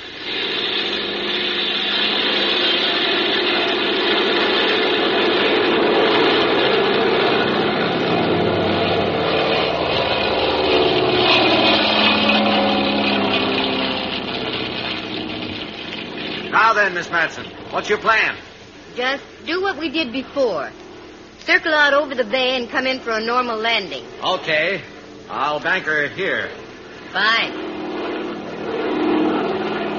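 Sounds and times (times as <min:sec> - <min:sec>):
small propeller plane engine roaring during takeoff: 0:00.0 - 0:29.9
speech: 0:17.0 - 0:20.8, 0:21.4 - 0:27.6.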